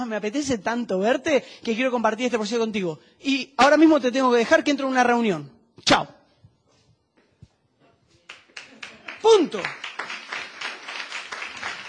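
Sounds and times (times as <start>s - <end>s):
speech: 0.0s - 6.2s, 9.2s - 9.8s
crowd applauding: 8.3s - 11.8s.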